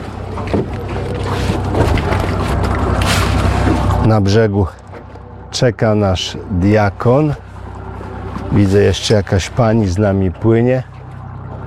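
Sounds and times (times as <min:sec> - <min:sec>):
rushing water: 0:00.0 - 0:04.9, 0:07.4 - 0:11.6
boat engine humming low and steady: 0:00.0 - 0:11.6
speech: 0:04.1 - 0:04.8, 0:05.5 - 0:07.5, 0:08.5 - 0:10.9.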